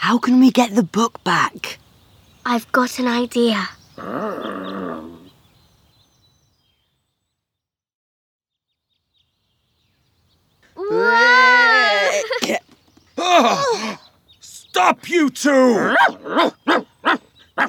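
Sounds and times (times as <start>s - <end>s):
speech: 0.0s - 1.8s, 2.4s - 4.6s, 14.9s - 16.8s
dog growling with a drawn-out snarl: 4.0s - 5.3s
person shouting: 10.8s - 12.4s, 13.2s - 14.0s
dog giving short sharp barks: 15.8s - 17.6s.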